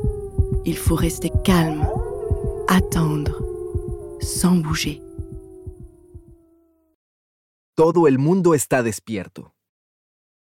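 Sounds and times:
heartbeat sound effect thumping deep and muffled: 0:00.0 - 0:06.4
speech: 0:00.6 - 0:02.0, 0:02.7 - 0:03.4, 0:04.2 - 0:05.0, 0:07.8 - 0:09.6.

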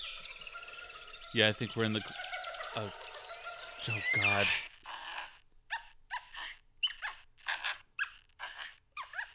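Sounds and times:
monkeys calling: 0:00.0 - 0:09.3
speech: 0:01.3 - 0:02.2, 0:02.8 - 0:03.0, 0:03.8 - 0:04.7.

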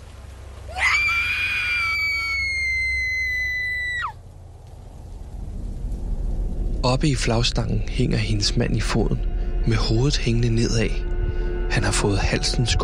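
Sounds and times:
low rumble: 0:00.0 - 0:12.8
woman's piercing sustained scream: 0:00.7 - 0:04.2
speech: 0:06.8 - 0:11.1, 0:11.7 - 0:12.8.

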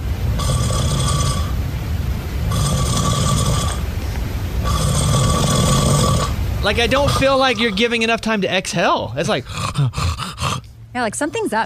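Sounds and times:
constant low rumble: 0:00.0 - 0:11.6
sleeping man snoring loudly: 0:00.4 - 0:01.6, 0:02.5 - 0:03.8, 0:04.6 - 0:08.0, 0:09.4 - 0:10.7
speech: 0:06.6 - 0:10.2, 0:10.9 - 0:11.6.

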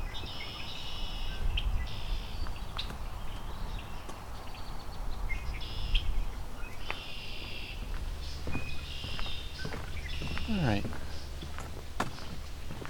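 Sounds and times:
common yellowthroat singing rolling phrases: 0:00.0 - 0:12.8
steady low rumbling outdoors: 0:00.0 - 0:12.8
clopping or footstep-like noises outdoors: 0:01.9 - 0:04.8, 0:06.7 - 0:12.8
speech: 0:10.5 - 0:11.0.

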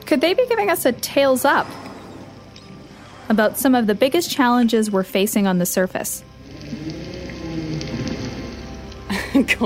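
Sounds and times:
speech: 0:00.1 - 0:01.8, 0:03.3 - 0:06.3, 0:09.4 - 0:09.6
whale grumbling social call underwater in the ocean: 0:01.6 - 0:02.4, 0:06.4 - 0:08.7
steady underwater hiss in the ocean: 0:06.4 - 0:08.8.

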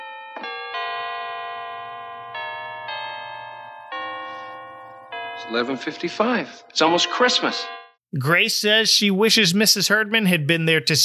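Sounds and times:
church bells ringing: 0:00.0 - 0:08.0
speech: 0:05.4 - 0:11.0.

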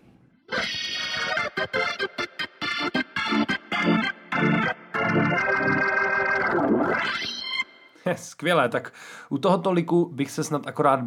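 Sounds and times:
Hammond organ playing short stabbed chords with its drawbars: 0:00.5 - 0:08.0
speech: 0:01.6 - 0:01.9, 0:08.1 - 0:11.0.

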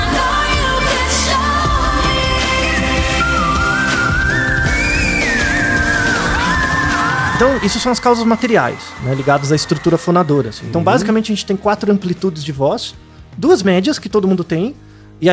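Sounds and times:
loud dense musical backing: 0:00.0 - 0:15.3
whistle register singing voice at very high pitch: 0:02.6 - 0:11.2
speech: 0:07.4 - 0:15.3.

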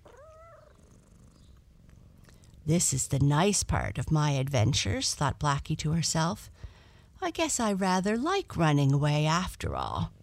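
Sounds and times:
cat chirping trill: 0:00.0 - 0:01.6
cat purring while being stroked: 0:00.0 - 0:02.6
speech: 0:02.6 - 0:10.2.

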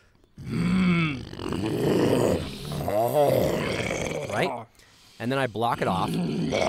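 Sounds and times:
person imitating a low growl with their voice: 0:00.4 - 0:04.7, 0:05.7 - 0:06.6
speech: 0:05.2 - 0:06.6.

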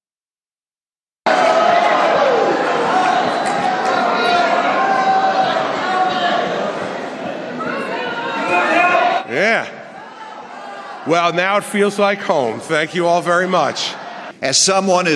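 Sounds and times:
people shouting: 0:01.3 - 0:11.7
large crowd in Florida booing: 0:01.3 - 0:14.4
speech: 0:11.1 - 0:15.1.

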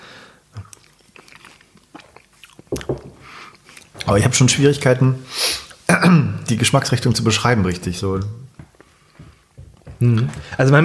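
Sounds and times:
person chewing while tasting food: 0:00.4 - 0:04.2, 0:08.5 - 0:10.6
speech: 0:04.1 - 0:05.4, 0:06.0 - 0:08.5, 0:10.0 - 0:10.8.

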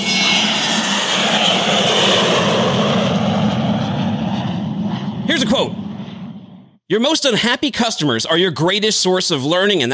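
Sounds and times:
airplane engines roaring at takeoff: 0:00.0 - 0:07.1
speech: 0:06.9 - 0:09.9.

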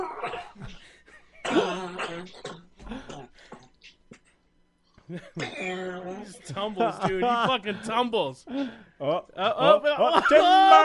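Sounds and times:
man in a rough coughing fit: 0:00.0 - 0:04.4, 0:05.1 - 0:06.0
speech: 0:05.1 - 0:10.8.

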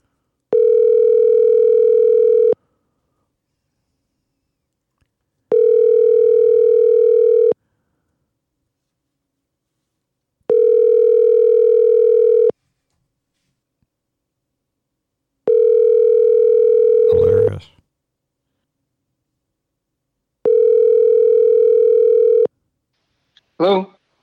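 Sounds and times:
phone ringback tone of an outgoing call: 0:00.5 - 0:02.6, 0:05.5 - 0:07.6, 0:10.5 - 0:12.5, 0:15.5 - 0:17.5, 0:20.4 - 0:22.5
speech: 0:23.6 - 0:23.8.

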